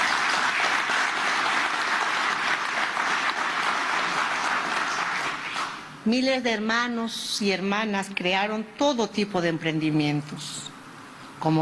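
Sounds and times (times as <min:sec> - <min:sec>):
large crowd applauding: 0:00.0 - 0:05.9
speech: 0:06.0 - 0:10.7, 0:11.4 - 0:11.5.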